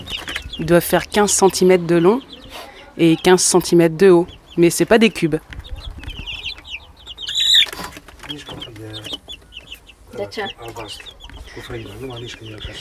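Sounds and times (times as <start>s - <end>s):
chickens flapping and squawking: 0.0s - 0.6s, 5.4s - 12.8s
speech: 0.0s - 2.3s, 3.0s - 5.6s, 10.3s - 12.8s
three-week-old chickens clucking and peeping: 0.0s - 12.8s.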